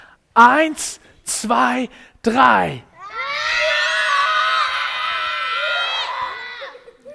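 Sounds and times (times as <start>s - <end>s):
speech: 0.4s - 2.9s
group of children screaming together: 3.0s - 7.1s.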